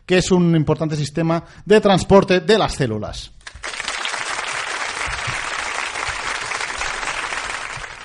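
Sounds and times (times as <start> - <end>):
speech: 0.1 - 3.4
audience applause: 3.5 - 8.0.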